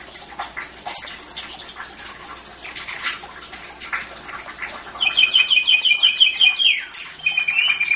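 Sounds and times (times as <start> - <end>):
Atlantic canary song: 5.0 - 7.9.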